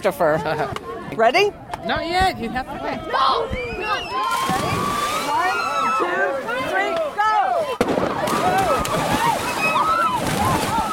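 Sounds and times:
speech: 0.0 - 5.0
children shrieking and shouting excitedly: 3.0 - 10.9
water splashing as children jump off a dock: 4.2 - 10.9.

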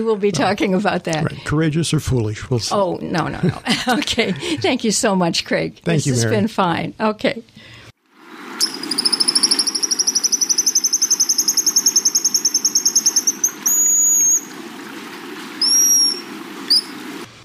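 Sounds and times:
speech: 0.0 - 7.7
Pigeon Guillemot twittering and whistling: 8.6 - 14.5, 15.6 - 17.2.

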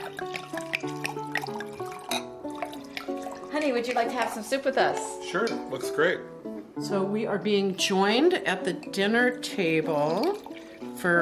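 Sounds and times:
wine pouring into a glass at a dinner table: 0.0 - 4.5, 9.9 - 10.9
small splashes and drips of wine: 0.0 - 4.8, 9.8 - 11.1
speech: 3.6 - 11.2.

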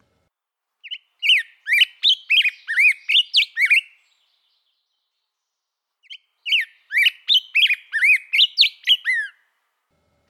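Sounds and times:
black-headed grosbeak whistled song: 0.8 - 5.1, 6.0 - 9.4.

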